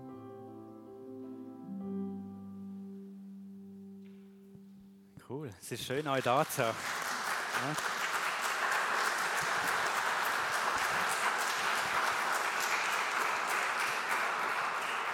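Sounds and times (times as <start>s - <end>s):
speech: 5.3s - 7.0s, 7.6s - 8.0s
audience clapping at a church service: 5.7s - 15.1s.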